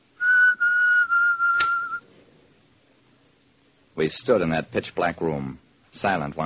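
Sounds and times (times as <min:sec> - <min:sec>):
person whistling one steady high note: 0:00.2 - 0:02.0
sharp click: 0:01.5 - 0:01.8
speech: 0:04.0 - 0:06.4.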